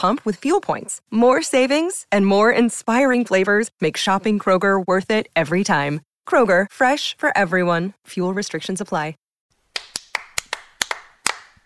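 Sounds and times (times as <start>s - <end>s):
speech: 0.0s - 9.2s
subdued golf clap of light crisp hand claps: 9.7s - 11.6s.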